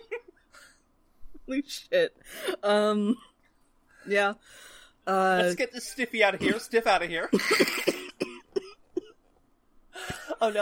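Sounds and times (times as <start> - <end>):
speech: 1.5 - 3.3, 4.0 - 8.0, 10.4 - 10.6
person coughing harshly and choking: 6.4 - 6.6, 7.3 - 9.2.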